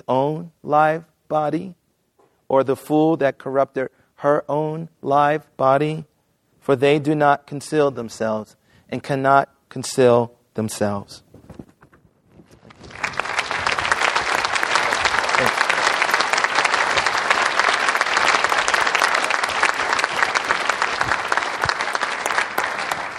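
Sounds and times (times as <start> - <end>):
speech: 0.1 - 1.8, 2.5 - 11.6
large audience applauding at a reading event: 12.7 - 23.1.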